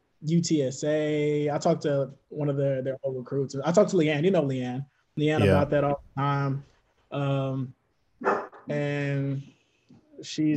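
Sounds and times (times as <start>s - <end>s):
speech: 0.2s - 9.5s, 10.2s - 10.5s
dog barking: 8.2s - 8.7s.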